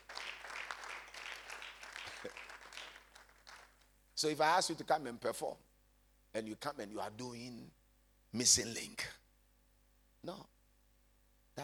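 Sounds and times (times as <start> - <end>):
crowd applauding: 0.0 - 3.8
speech: 2.2 - 2.5, 4.2 - 5.7, 6.3 - 9.2, 10.2 - 10.5.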